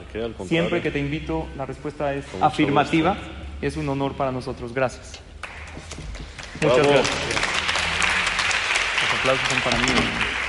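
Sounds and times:
speech: 0.1s - 5.9s, 6.6s - 7.3s, 9.2s - 10.3s
crowd applause: 5.4s - 10.4s.

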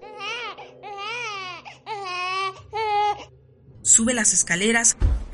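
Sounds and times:
baby crying with wavering wails and whimpering: 0.0s - 3.3s
speech: 4.0s - 5.2s.

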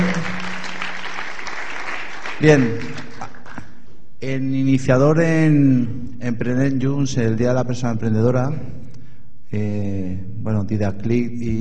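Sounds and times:
audience applause: 0.0s - 3.6s
speech: 2.4s - 3.0s, 4.2s - 8.8s, 9.5s - 11.5s.

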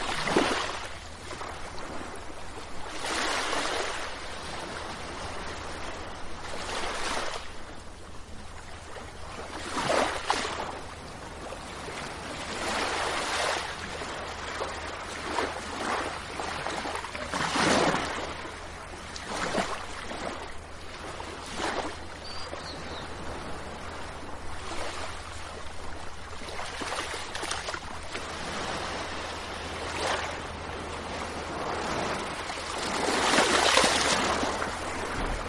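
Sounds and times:
constant hum: 0.0s - 35.4s
waves washing onto the shore: 0.0s - 35.4s.

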